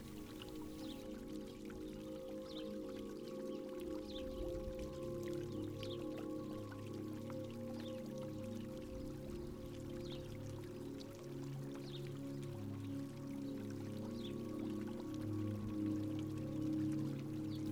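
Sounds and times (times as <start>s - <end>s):
rain falling: 0.0s - 1.0s
water dripping: 0.0s - 17.7s.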